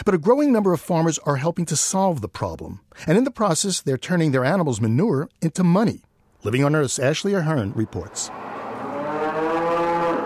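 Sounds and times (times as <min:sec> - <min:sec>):
speech: 0:00.0 - 0:08.6
dairy cow in a long pen on a dairy farm in Bridport Vermont mooing: 0:08.3 - 0:10.2.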